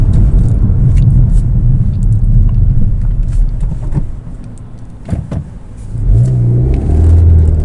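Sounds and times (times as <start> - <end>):
car engine revving between gear changes: 0.0 - 7.6.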